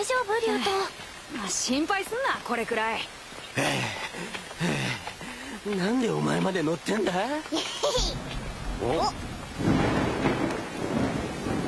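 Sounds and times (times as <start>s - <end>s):
speech: 0.0s - 4.8s, 5.6s - 8.2s, 8.8s - 9.2s
steady rain hissing: 0.0s - 11.6s
deep sustained rumble of thunder: 8.0s - 11.6s.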